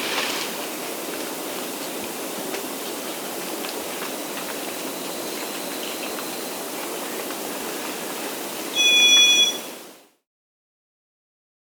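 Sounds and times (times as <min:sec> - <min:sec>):
steady background hiss: 0:00.0 - 0:10.1
white-eared solitaire high-pitched ringing tone in South America: 0:08.7 - 0:09.8.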